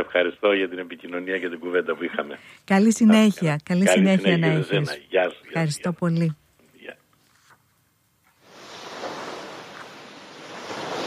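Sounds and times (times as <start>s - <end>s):
speech: 0.0s - 7.0s
sea waves washing in: 8.4s - 11.0s.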